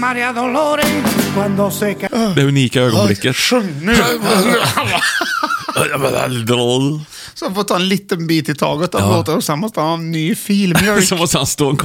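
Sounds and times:
speech: 0.0s - 11.8s
man clearing his throat: 3.9s - 6.3s
laughter: 3.9s - 6.5s, 10.7s - 11.3s.

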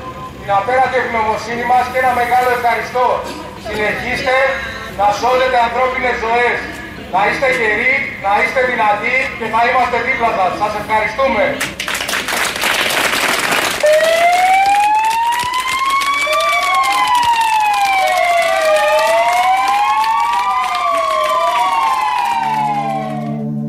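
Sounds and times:
speech: 0.5s - 11.8s
crowd applause and cheering: 11.6s - 23.4s
fire engine sirens wailing: 13.8s - 23.6s.

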